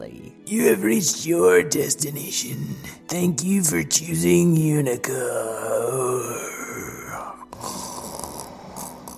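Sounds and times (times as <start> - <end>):
speech: 0.0 - 7.0
car making rough raspy snoring sound: 7.1 - 9.1.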